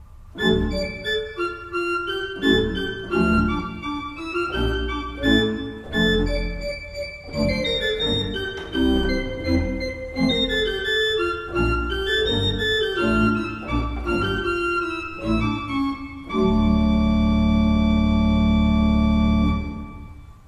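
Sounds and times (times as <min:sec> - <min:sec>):
pipe organ: 0:00.0 - 0:20.4.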